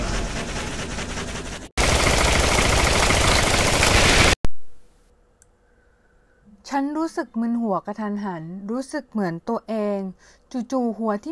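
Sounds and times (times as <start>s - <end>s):
rapid gunfire sound effects: 0.2s - 4.4s
speech: 6.8s - 11.3s.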